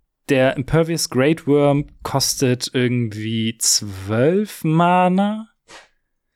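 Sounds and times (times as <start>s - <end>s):
speech: 0.3s - 5.8s
sneeze: 5.7s - 6.0s.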